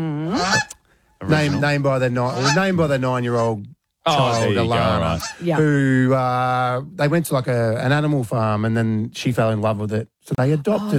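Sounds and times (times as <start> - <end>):
speech: 0.0 - 10.9
goose honking: 1.3 - 3.5, 4.2 - 5.5.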